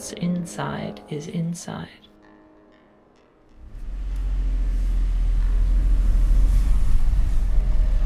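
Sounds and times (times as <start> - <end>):
speech: 0.0 - 2.1
large vehicle engine idling and rumbling outside: 3.6 - 8.0.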